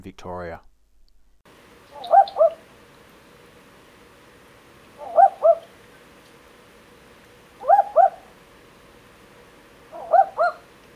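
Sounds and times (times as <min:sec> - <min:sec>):
speech: 0:00.0 - 0:00.7
barking owl double-note call: 0:01.8 - 0:02.8, 0:04.9 - 0:06.0, 0:07.5 - 0:08.5, 0:09.8 - 0:10.8.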